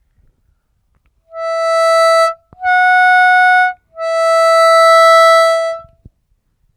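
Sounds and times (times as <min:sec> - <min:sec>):
harmonica overbend: 0:01.3 - 0:05.9.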